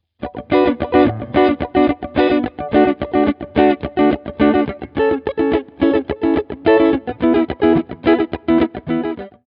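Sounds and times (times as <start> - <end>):
clean guitar through iRig: 0.2 - 9.4.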